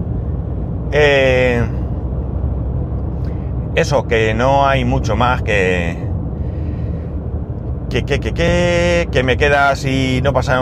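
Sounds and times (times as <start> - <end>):
dense heavy road traffic rumble: 0.0 - 10.6
speech: 0.9 - 1.8, 3.8 - 6.1, 7.9 - 10.6.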